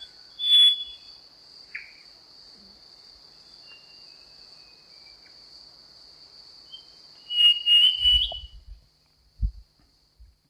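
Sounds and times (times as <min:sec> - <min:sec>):
Black-chinned robin sustained pulsing high whistle: 0:00.0 - 0:01.2, 0:06.8 - 0:08.6
insect drone: 0:00.0 - 0:10.4
low thumps: 0:09.4 - 0:09.7.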